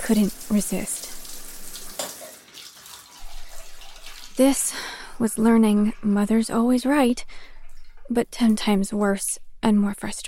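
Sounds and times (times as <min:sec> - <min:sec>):
tap running cool water: 0:00.0 - 0:08.2
speech: 0:00.1 - 0:01.1, 0:04.4 - 0:07.5, 0:08.1 - 0:10.2.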